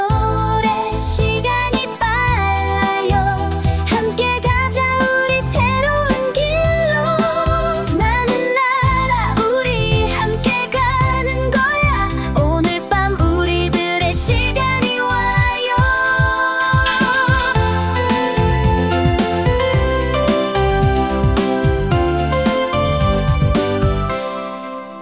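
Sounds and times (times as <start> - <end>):
new jack swing dance music: 0.1 - 24.9.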